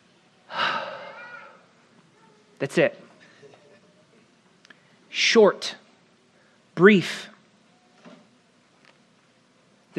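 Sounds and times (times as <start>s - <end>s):
person taking a breath and exhaling: 0.5s - 1.6s
speech: 2.6s - 3.1s, 5.3s - 5.8s, 6.8s - 7.3s.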